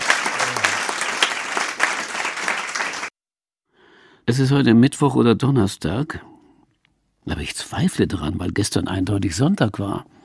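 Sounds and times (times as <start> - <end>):
audience applauding: 0.0 - 3.1
speech: 4.3 - 6.3, 7.2 - 10.2.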